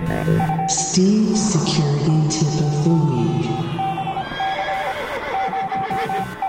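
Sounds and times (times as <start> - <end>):
speech: 0.1 - 3.1
horse neighing and whinnying: 4.2 - 6.3.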